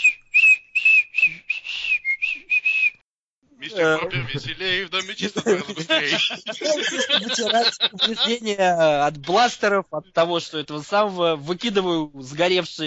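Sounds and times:
person whistling a lilting tune while tidying up: 0:00.0 - 0:03.0
laughter: 0:03.6 - 0:09.4
speech: 0:03.8 - 0:12.8.

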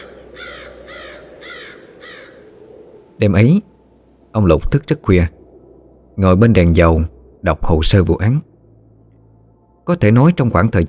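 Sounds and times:
crows cawing as they take flight from tree branches: 0:00.0 - 0:02.8
low steady rumble: 0:00.0 - 0:10.8
speech: 0:03.2 - 0:03.7, 0:04.4 - 0:05.4, 0:06.2 - 0:08.5, 0:09.9 - 0:10.8.

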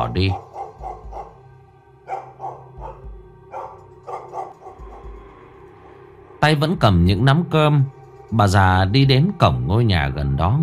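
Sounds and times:
speech: 0:00.0 - 0:00.5, 0:06.4 - 0:10.6
neighbour's dog barking: 0:00.3 - 0:01.4, 0:02.0 - 0:05.2.

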